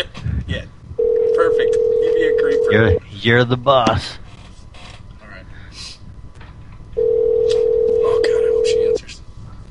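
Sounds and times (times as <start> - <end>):
steady electronic phone ringing tone of an outgoing call: 1.0 - 3.0, 7.0 - 9.0
speech: 2.7 - 4.2.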